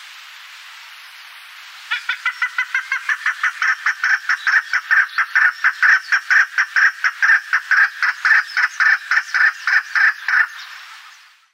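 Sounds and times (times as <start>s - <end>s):
chukar clucking calls: 1.9s - 10.8s.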